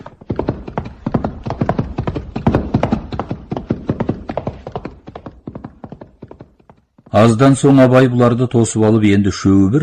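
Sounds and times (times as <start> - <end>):
horses galloping in a race: 0.0 - 7.6
speech: 7.1 - 9.8.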